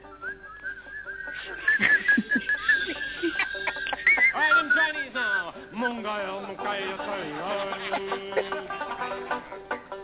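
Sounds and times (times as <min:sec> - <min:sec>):
people whistling: 0:00.0 - 0:05.6
laughter: 0:01.2 - 0:09.7
scattered voices: 0:03.3 - 0:08.8.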